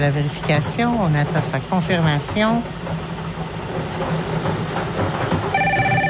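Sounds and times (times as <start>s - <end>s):
speech: 0.0s - 3.1s
steady rumbling, clattering background: 0.0s - 6.0s
bright trilling telephone ring: 5.5s - 6.0s.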